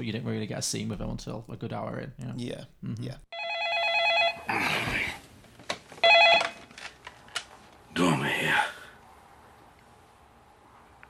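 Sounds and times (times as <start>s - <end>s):
speech: 0.0s - 3.5s, 4.5s - 5.2s
telephone ringing in a film: 3.3s - 4.5s, 6.0s - 6.6s.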